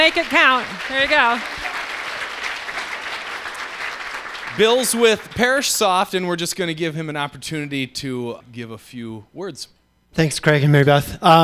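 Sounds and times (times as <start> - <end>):
speech: 0.0 - 1.6, 4.6 - 11.4
audience applause for a sponsor at a lunch event: 0.0 - 6.0.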